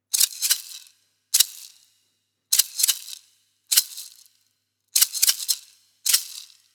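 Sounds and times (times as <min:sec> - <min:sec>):
improvised maracas: 0:00.0 - 0:01.9, 0:02.5 - 0:04.3, 0:05.0 - 0:06.7.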